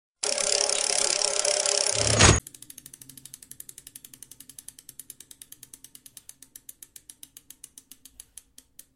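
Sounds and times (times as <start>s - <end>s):
spinning animation sound effect: 0.2s - 3.3s.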